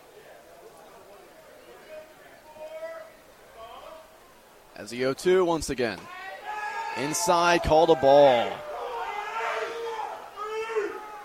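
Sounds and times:
speech: 0:04.8 - 0:06.2, 0:07.0 - 0:08.7
baseball crowd booing in frustration: 0:06.1 - 0:11.2.

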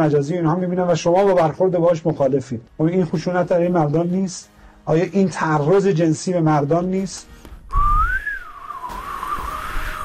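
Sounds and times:
speech: 0:00.0 - 0:07.9
person whistling: 0:07.7 - 0:10.0.

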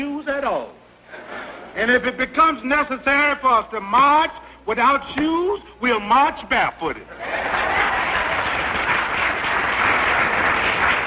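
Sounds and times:
speech: 0:00.0 - 0:00.8, 0:01.8 - 0:07.5
audience clapping: 0:07.3 - 0:11.0.

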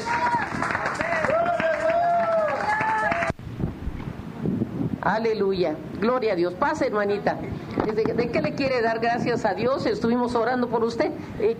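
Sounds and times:
church audience applauding: 0:00.0 - 0:03.4
noise: 0:00.0 - 0:11.5
speech: 0:05.1 - 0:11.5.

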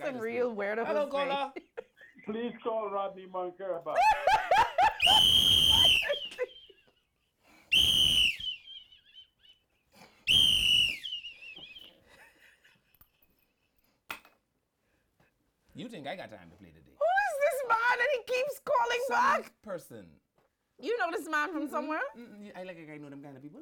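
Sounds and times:
speech: 0:00.0 - 0:01.7, 0:02.3 - 0:06.4, 0:15.8 - 0:20.2, 0:20.8 - 0:23.6
laughter: 0:03.9 - 0:07.0
whistle being blown: 0:05.0 - 0:06.4, 0:07.7 - 0:08.9, 0:10.3 - 0:11.9.

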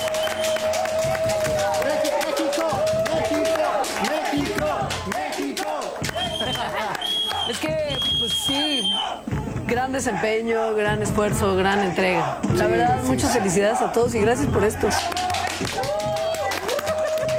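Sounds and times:
group applauding: 0:00.0 - 0:09.6, 0:11.4 - 0:17.3
high whistle-like tones: 0:00.0 - 0:09.8, 0:13.3 - 0:17.3
laughter: 0:00.0 - 0:17.3
voices cheering: 0:00.0 - 0:17.3
speech: 0:09.8 - 0:15.2.

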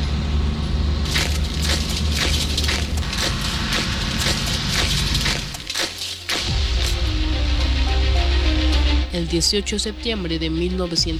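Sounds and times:
army trucks and armored vehicles rumbling at the Ciudad Universitaria stadium: 0:00.0 - 0:09.2
crunching impacts: 0:01.0 - 0:07.2
sharp clanks: 0:01.1 - 0:07.2
speech: 0:09.3 - 0:11.1.

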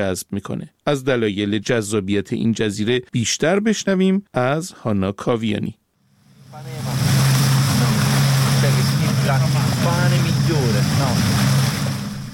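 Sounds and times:
speech: 0:00.0 - 0:05.8, 0:09.3 - 0:11.6
low motorboat drone: 0:06.2 - 0:12.3
surf washing on a small island beach in the Ionian Sea: 0:06.5 - 0:12.3.

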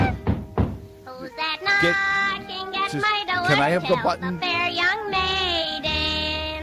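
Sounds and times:
dull solid knocks on a door: 0:00.0 - 0:00.8
person singing in a sustained melodic voice: 0:01.1 - 0:06.6
speech: 0:01.8 - 0:02.1, 0:02.9 - 0:04.8.

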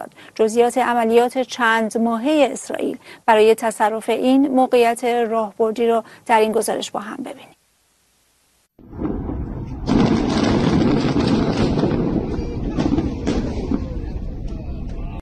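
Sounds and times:
speech: 0:00.0 - 0:07.6
huge explosion blowing up an underground tunnel network with rumbling roar: 0:08.8 - 0:15.1.

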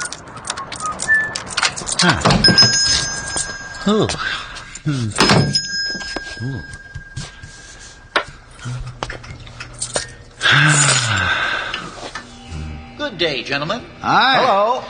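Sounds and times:
shop door opening: 0:00.0 - 0:03.9, 0:05.2 - 0:05.8
small bell above shop door ringing: 0:00.7 - 0:08.2
speech: 0:02.0 - 0:03.0, 0:03.9 - 0:05.6, 0:06.4 - 0:06.7, 0:10.6 - 0:11.4, 0:13.1 - 0:14.8.

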